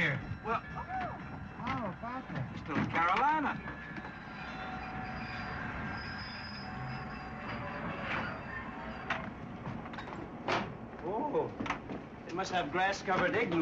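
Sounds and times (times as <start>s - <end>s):
train rolling along the rails with a heavy rumble: 0.0s - 13.5s
speech: 0.4s - 1.0s, 2.0s - 3.9s, 12.4s - 13.5s
train wheels clacking over track joints: 1.0s - 4.2s, 7.5s - 13.5s.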